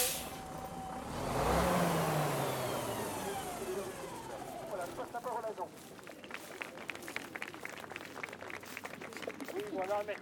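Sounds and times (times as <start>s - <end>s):
bus air brakes hissing: 0.0s - 0.7s
bus engine revving and droning: 0.0s - 5.2s
road rumble: 0.0s - 10.2s
speech: 9.8s - 10.2s.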